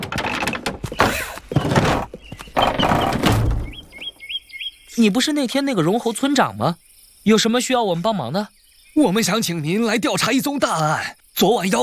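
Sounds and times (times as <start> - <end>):
door opening with heavy clunks and a scraping slide: 0.0 - 4.2
short high chirping tones: 2.2 - 5.1
speech: 5.0 - 11.8.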